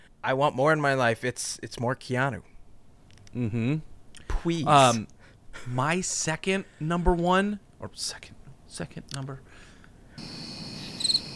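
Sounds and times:
speech: 0.2s - 2.5s, 3.3s - 9.6s
crickets chirping in a high-pitched trill: 10.2s - 11.3s.

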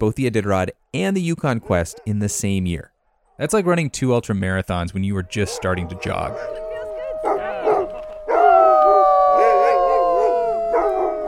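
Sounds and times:
speech: 0.0s - 6.6s
pack of huskies howling: 5.1s - 11.2s.

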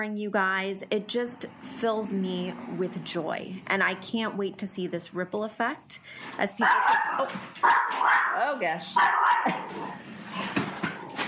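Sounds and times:
speech: 0.0s - 10.7s
dog barking at the mailman: 6.6s - 8.4s, 9.0s - 10.0s.

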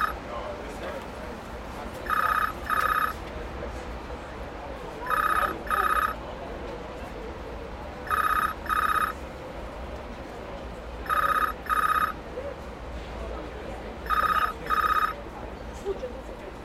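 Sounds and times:
faint voices: 0.0s - 16.6s
steady low rumble of traffic and street noise: 0.0s - 16.6s
pay phone ringing in a red telephone box: 2.0s - 3.2s, 5.0s - 6.2s, 8.0s - 9.2s, 11.0s - 12.2s, 14.0s - 15.2s.

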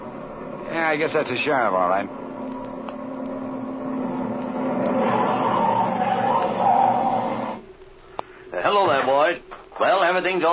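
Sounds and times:
car engine roaring as the car approaches at speed: 0.0s - 7.6s
speech: 0.8s - 2.2s, 8.6s - 10.5s.

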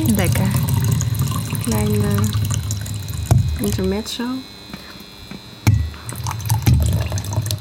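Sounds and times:
tea pouring into a cup: 0.0s - 3.4s, 6.1s - 7.5s
speech: 1.7s - 2.4s, 3.6s - 4.6s.

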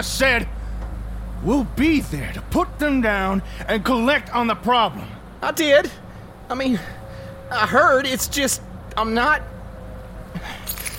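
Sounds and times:
speech: 0.0s - 0.6s, 1.4s - 9.5s
low steady background: 0.0s - 10.9s
keys jangling: 10.4s - 10.9s.

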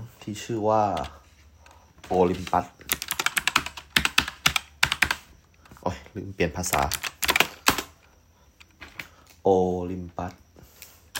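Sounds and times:
speech: 0.2s - 1.2s, 2.1s - 2.8s, 5.9s - 7.1s, 9.4s - 10.4s
fingers typing on a computer keyboard while writing a film script: 2.1s - 5.3s, 6.6s - 8.0s.

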